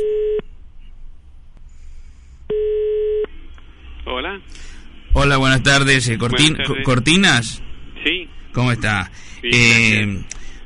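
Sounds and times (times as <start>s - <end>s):
telephone line ringing tone of an outgoing call: 0.0s - 0.4s, 2.5s - 3.2s
speech: 4.3s - 10.6s.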